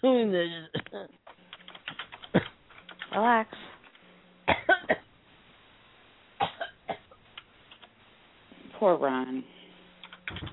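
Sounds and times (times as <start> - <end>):
speech: 0.0 - 1.3, 3.1 - 3.7, 8.8 - 9.6
person coughing in a coughing fit: 4.5 - 5.0, 6.4 - 7.2.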